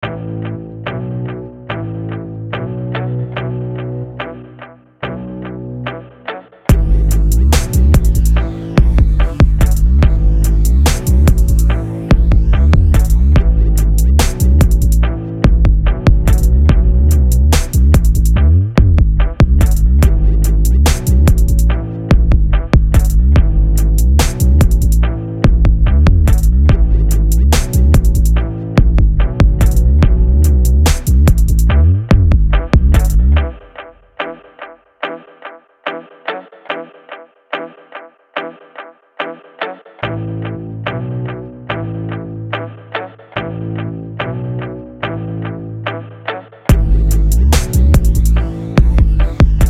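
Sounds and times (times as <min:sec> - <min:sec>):
instrumental beat: 0:06.7 - 0:34.7, 0:46.7 - 0:49.6.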